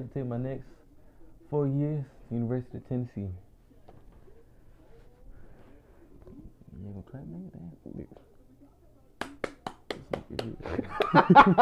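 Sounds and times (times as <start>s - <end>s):
speech: 0.0s - 0.8s, 1.5s - 3.4s, 6.8s - 8.3s, 10.3s - 11.6s
one-handed clap against a phone: 9.2s - 11.3s
laughter: 10.6s - 11.6s.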